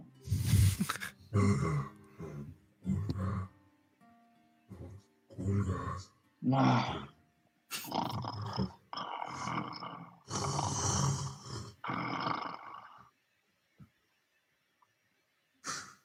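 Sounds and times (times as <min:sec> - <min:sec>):
speech: 0:01.3 - 0:02.0, 0:05.5 - 0:07.1
dog growling: 0:01.3 - 0:03.6, 0:05.3 - 0:07.1, 0:07.8 - 0:13.0.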